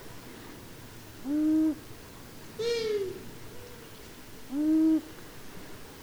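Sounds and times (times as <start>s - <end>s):
long-eared owl hooting: 1.2s - 1.9s, 2.6s - 5.2s.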